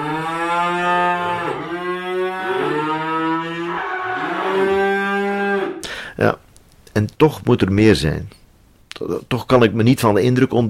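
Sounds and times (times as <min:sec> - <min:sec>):
cows mooing in a drawn-out chorus: 0:00.0 - 0:05.8
speech: 0:07.0 - 0:08.4, 0:09.0 - 0:10.6.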